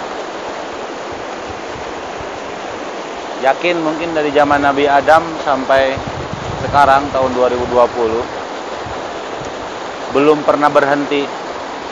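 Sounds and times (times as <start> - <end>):
rushing stream water splashing and gurgling: 0.0 - 11.8
speech: 3.4 - 8.4, 10.1 - 11.4.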